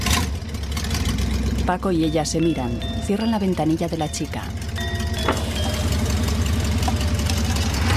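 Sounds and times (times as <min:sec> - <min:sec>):
car engine running as the car pulls away through a barrier: 0:00.0 - 0:07.9
speech: 0:01.7 - 0:04.6.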